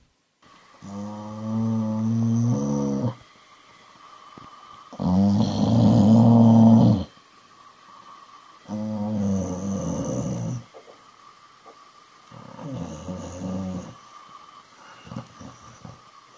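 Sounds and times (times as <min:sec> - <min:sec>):
dog grumbling and growling: 0:00.8 - 0:03.2, 0:04.9 - 0:07.1, 0:08.7 - 0:10.7, 0:12.3 - 0:14.0, 0:14.9 - 0:16.0.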